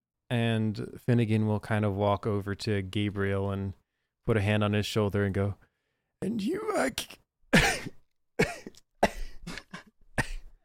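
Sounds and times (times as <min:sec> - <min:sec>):
speech: 0:00.3 - 0:07.8
person coughing short dry coughs: 0:07.5 - 0:10.6
throat clearing: 0:07.6 - 0:10.5.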